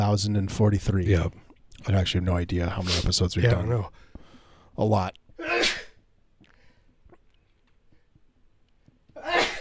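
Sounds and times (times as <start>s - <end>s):
speech: 0.1s - 4.1s, 4.8s - 5.2s
person sneezing: 5.4s - 6.0s, 9.2s - 9.5s.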